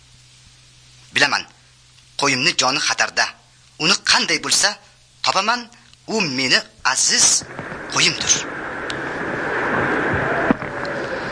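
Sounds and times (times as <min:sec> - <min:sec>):
speech: 0:01.1 - 0:01.6, 0:02.2 - 0:08.6
wind and storm noise on a dark night: 0:07.0 - 0:11.3.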